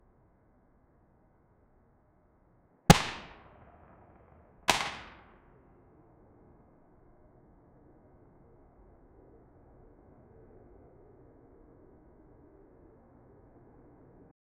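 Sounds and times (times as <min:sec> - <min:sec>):
real revolver gunshot: 0:02.9 - 0:05.3.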